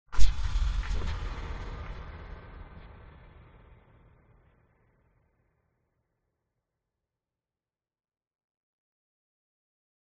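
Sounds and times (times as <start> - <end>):
bright scary cinematic hit boom with tail: 0.2 - 4.6.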